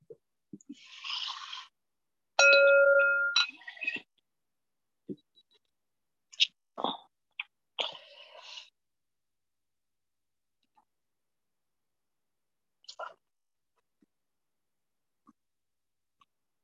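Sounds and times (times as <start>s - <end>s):
bell ringing: 2.4s - 3.5s.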